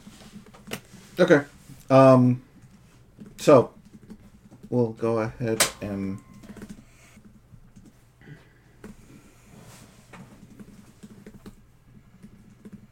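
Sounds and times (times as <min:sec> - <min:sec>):
steady low hum: 0:00.0 - 0:12.9
speech: 0:01.2 - 0:02.4, 0:03.4 - 0:03.8, 0:04.7 - 0:06.2
typing on a computer keyboard: 0:02.6 - 0:04.7, 0:10.4 - 0:12.9.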